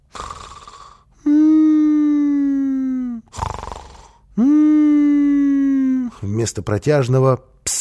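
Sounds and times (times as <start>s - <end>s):
voice imitating snoring of a sleeping man having a nightmare: 0.0s - 6.2s
drawn-out plaintive whimpering moan: 1.2s - 6.3s
speech: 4.4s - 4.6s, 6.2s - 7.5s.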